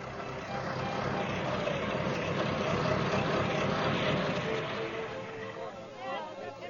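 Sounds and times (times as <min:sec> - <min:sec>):
car engine idling at a gas station: 0:00.0 - 0:06.0.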